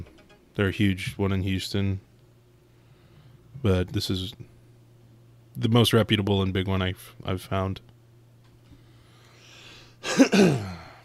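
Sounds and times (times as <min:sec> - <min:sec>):
speech: 0:00.6 - 0:02.1, 0:03.6 - 0:04.5, 0:05.6 - 0:07.9, 0:10.1 - 0:10.8
person clearing throat: 0:10.0 - 0:11.0.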